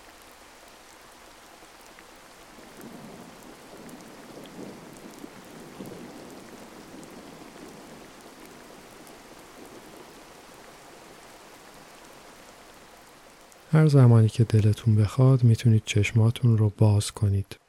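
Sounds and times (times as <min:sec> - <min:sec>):
steady rainfall: 0:00.0 - 0:17.6
low rumbles of thunder: 0:02.6 - 0:10.2
speech: 0:13.7 - 0:17.6.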